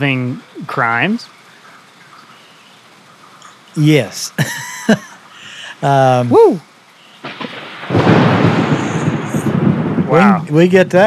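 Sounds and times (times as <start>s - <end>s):
speech: 0.0s - 1.4s, 3.8s - 5.1s, 5.8s - 6.7s, 10.1s - 11.0s
steady rain: 0.0s - 11.0s
laughter: 4.2s - 6.3s
rumbling thunder clap during a rainstorm: 7.2s - 11.0s.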